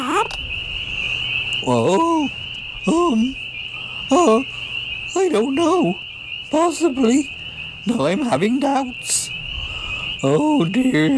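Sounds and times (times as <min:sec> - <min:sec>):
man imitating peeper frog calls with rising chirps: 0:00.0 - 0:00.5, 0:01.6 - 0:11.1
steady high-pitched insect-like drone: 0:00.0 - 0:11.1
speech: 0:01.6 - 0:03.4, 0:04.1 - 0:04.6, 0:05.2 - 0:09.2, 0:10.2 - 0:11.1.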